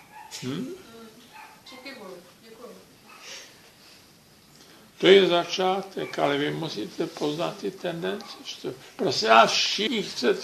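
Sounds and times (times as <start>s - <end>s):
dog barking: 0.0s - 0.4s, 1.3s - 1.9s, 6.0s - 6.4s, 8.2s - 8.5s
speech: 0.4s - 0.8s, 5.0s - 10.4s.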